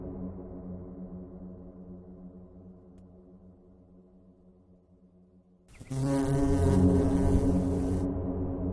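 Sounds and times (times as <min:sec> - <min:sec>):
bees buzzing: 0:05.8 - 0:08.0.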